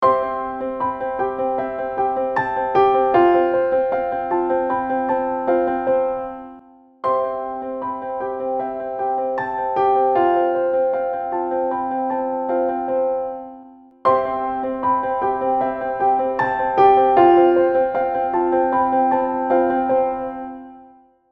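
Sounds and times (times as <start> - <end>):
piano with reverb: 0.0 - 21.2.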